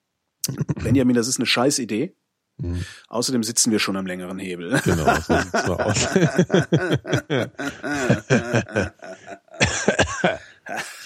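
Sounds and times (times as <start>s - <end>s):
speech: 0.5s - 11.0s
laughter: 4.7s - 11.0s
person coughing: 4.9s - 11.0s.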